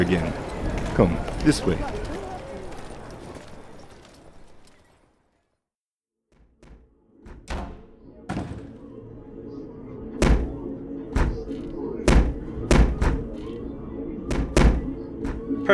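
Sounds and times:
speech: 0.0 - 0.4, 1.0 - 2.0
low murmur of voices: 0.0 - 4.6, 8.2 - 15.7
fists pounding on a door: 6.4 - 8.9, 10.2 - 10.6, 12.1 - 13.3, 14.3 - 15.4.

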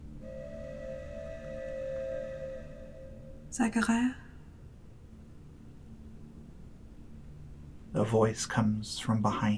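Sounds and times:
distant train whistle: 0.2 - 3.6
speech: 3.5 - 4.2, 8.0 - 9.5.

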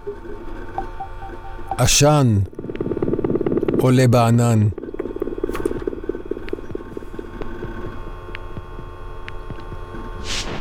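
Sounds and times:
computer hard drive humming under strain: 0.0 - 10.5
speech: 1.8 - 2.5, 3.8 - 4.8
computer hard disk clicking and ticking: 2.6 - 10.1.

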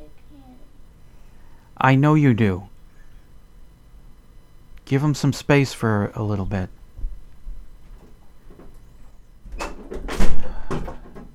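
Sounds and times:
speech: 1.8 - 2.7, 4.9 - 6.8
door slammed shut with thuds and rattles: 9.5 - 11.3.

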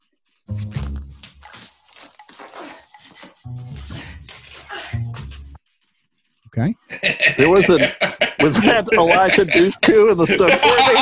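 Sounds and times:
fabric of a dress ripping: 0.5 - 5.5
speech: 6.6 - 11.0
laughter: 6.9 - 11.0.

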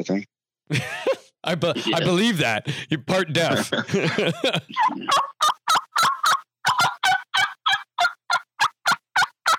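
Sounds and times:
speech: 0.0 - 5.2
laughter: 0.7 - 5.7
turkey yelps blown on a hunter's mouth call: 5.1 - 9.5.

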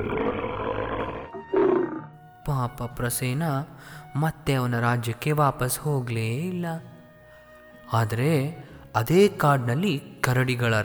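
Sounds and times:
lion roaring: 0.0 - 2.2
speech: 2.6 - 6.9, 7.9 - 10.8.

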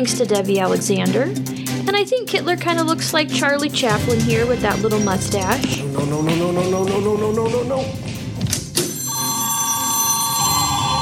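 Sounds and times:
speech: 0.0 - 8.1
telephone bell ringing with a bright metallic trill: 8.9 - 11.0.

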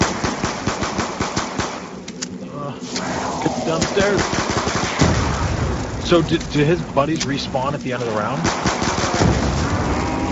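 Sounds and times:
rapid video game gunfire shooting zombies: 0.0 - 2.0, 3.6 - 6.7, 8.3 - 9.8
quieter video game noise: 0.0 - 10.2
speech: 3.4 - 4.5, 6.1 - 8.8.

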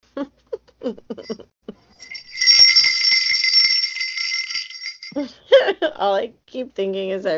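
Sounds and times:
speech: 0.2 - 1.5, 6.0 - 7.3
small bells jingling: 1.3 - 5.7.

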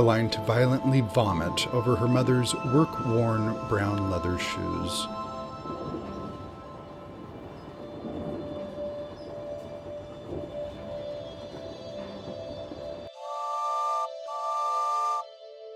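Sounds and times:
speech: 0.0 - 5.2
train rumbling along with rattling and tonal squeals: 0.0 - 13.2
loud sustained train whistle blasts: 13.2 - 15.3.

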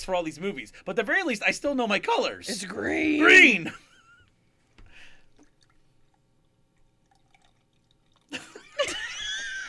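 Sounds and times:
speech: 0.0 - 3.9
beer pouring slowly into a glass: 5.0 - 8.7.

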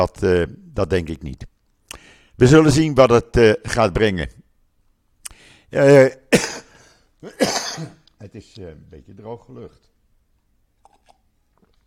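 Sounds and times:
speech: 0.0 - 1.5, 2.4 - 4.4, 5.7 - 6.6, 7.2 - 9.9
wet mouth clicks: 1.8 - 2.0, 10.8 - 11.8
person sipping water: 10.8 - 11.8.

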